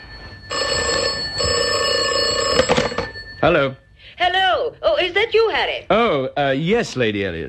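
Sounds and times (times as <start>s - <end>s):
telephone bell ringing: 0.0s - 3.9s
speech: 3.4s - 7.4s.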